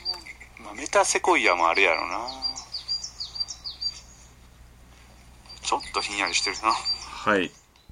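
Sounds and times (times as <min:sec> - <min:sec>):
wild birds singing among Himalayan cedar and metasequoia trees: 0:00.0 - 0:07.8
speech: 0:00.7 - 0:02.5, 0:05.7 - 0:07.6.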